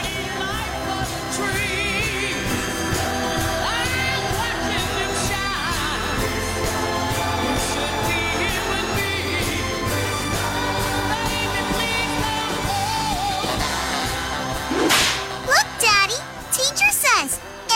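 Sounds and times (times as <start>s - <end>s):
busy bright musical bed: 0.0s - 17.7s
loud whip crack: 14.7s - 15.4s.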